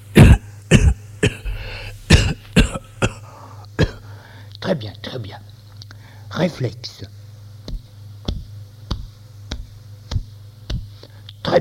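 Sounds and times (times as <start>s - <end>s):
patient coughing on doctor's request: 0.1s - 4.1s
speech: 4.7s - 5.6s, 6.3s - 7.2s.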